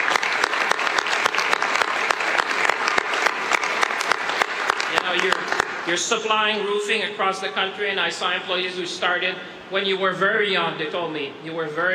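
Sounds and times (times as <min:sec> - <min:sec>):
audience applauding: 0:00.0 - 0:06.0
speech: 0:05.9 - 0:11.9.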